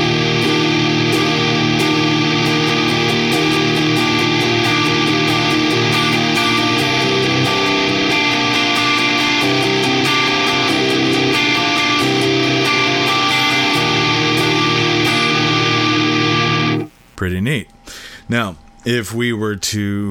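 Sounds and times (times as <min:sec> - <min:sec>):
electric guitar chords through a germanium fuzz pedal: 0:00.0 - 0:17.2
speech: 0:18.3 - 0:20.1.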